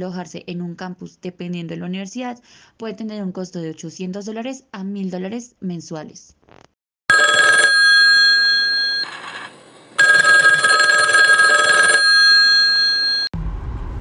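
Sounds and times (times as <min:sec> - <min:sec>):
speech: 0:00.0 - 0:06.7
telephone bell ringing: 0:07.1 - 0:13.3.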